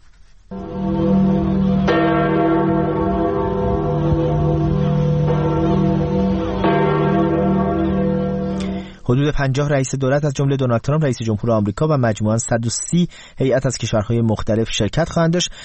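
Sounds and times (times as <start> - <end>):
large church bells tolling: 0.5 - 9.1
speech: 9.1 - 15.6.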